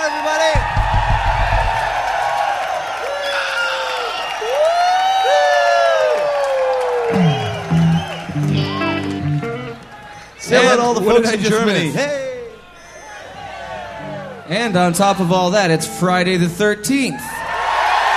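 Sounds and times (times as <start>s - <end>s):
concert crowd screaming and cheering: 0.0s - 16.3s, 17.1s - 18.1s
speech: 10.5s - 12.2s, 14.5s - 17.4s.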